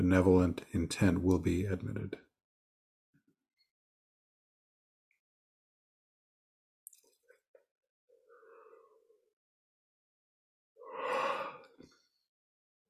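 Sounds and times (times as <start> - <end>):
speech: 0.0 - 2.3
person yawning with a drawn-out breathy vocal sound: 10.8 - 11.7.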